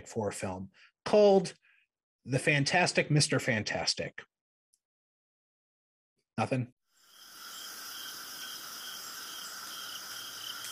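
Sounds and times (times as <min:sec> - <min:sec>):
speech: 0:00.0 - 0:01.6, 0:02.2 - 0:04.3, 0:06.4 - 0:06.8
chorus of crickets chirping: 0:07.0 - 0:10.7.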